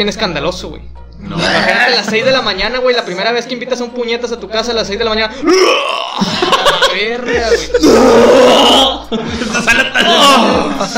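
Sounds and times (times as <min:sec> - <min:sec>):
speech: 0:00.0 - 0:10.9
person loudly imitating vomiting with gagging and retching: 0:01.3 - 0:01.9, 0:05.4 - 0:06.5, 0:07.5 - 0:10.9
laughter: 0:06.2 - 0:10.9.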